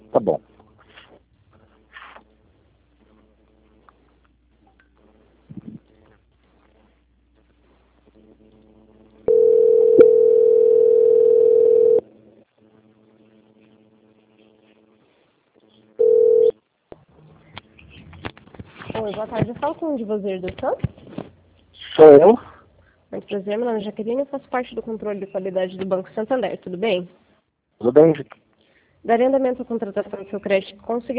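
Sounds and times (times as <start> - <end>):
speech: 0.2 - 0.5, 19.1 - 21.0, 22.0 - 22.5, 23.2 - 27.2, 27.8 - 28.4, 29.0 - 31.1
telephone line tone during call transfer: 9.3 - 12.0, 16.0 - 16.6.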